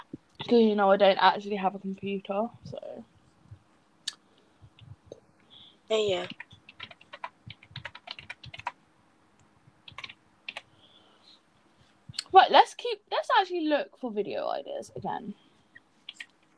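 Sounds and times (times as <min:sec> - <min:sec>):
low hum: 0:00.0 - 0:16.5
speech: 0:00.5 - 0:03.1, 0:05.9 - 0:06.4, 0:12.3 - 0:15.4
typing on a wireless keyboard: 0:06.1 - 0:08.8, 0:09.8 - 0:10.7.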